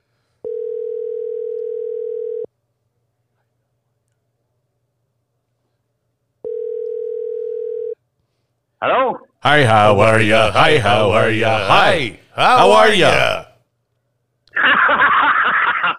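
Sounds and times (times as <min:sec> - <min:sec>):
phone call tone from a call placed by a voice assistant: 0:00.5 - 0:02.5, 0:06.4 - 0:08.0
speech: 0:08.8 - 0:13.4
laughter: 0:14.5 - 0:15.9.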